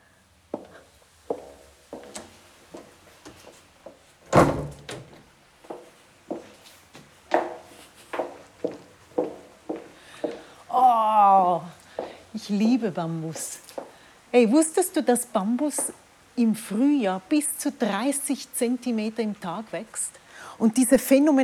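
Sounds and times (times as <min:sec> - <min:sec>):
footsteps thudding: 0:00.5 - 0:10.6, 0:11.9 - 0:12.2, 0:13.3 - 0:14.0
heavy emergency exit door opening and banging shut: 0:04.2 - 0:05.3
speech: 0:12.5 - 0:13.7, 0:14.3 - 0:21.4.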